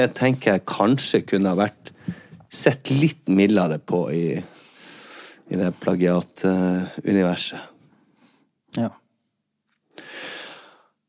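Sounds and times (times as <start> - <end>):
speech: 0.0 - 4.6, 5.5 - 7.7, 8.8 - 9.0
shallow throaty breath: 1.9 - 2.4, 4.5 - 5.4, 10.0 - 11.0.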